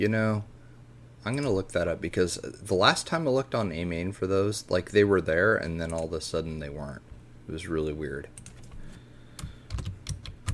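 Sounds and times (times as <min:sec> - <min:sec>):
speech: 0:00.0 - 0:00.5, 0:01.2 - 0:08.5
clicky keystrokes on a computer keyboard: 0:09.4 - 0:10.5.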